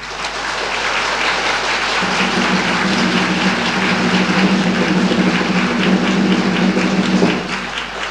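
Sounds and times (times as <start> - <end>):
large audience applauding: 0.0 - 8.0
faint low drone: 2.0 - 7.8.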